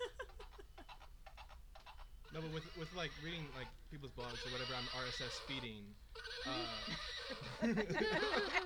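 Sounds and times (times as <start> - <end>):
laughter: 0.0 - 0.8, 6.9 - 8.6
horse neighing in a quavering warbling whinny: 2.3 - 8.6
speech: 2.3 - 8.6.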